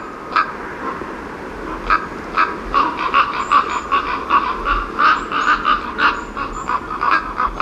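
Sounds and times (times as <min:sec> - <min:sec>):
flock of ravens croaking and calling at a winter roost: 0:00.0 - 0:07.6.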